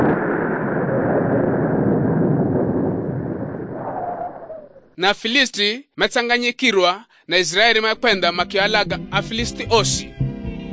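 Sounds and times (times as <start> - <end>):
explosion-like sound effect with broad roaring rumble: 0.0 - 5.0
speech: 5.0 - 10.2.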